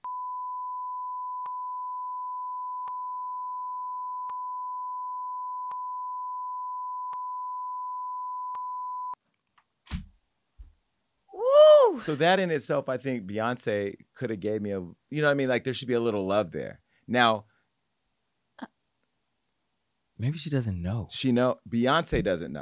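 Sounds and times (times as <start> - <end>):
censor bleep tone: 0.0 - 9.2
speech: 12.0 - 17.5, 20.2 - 22.6.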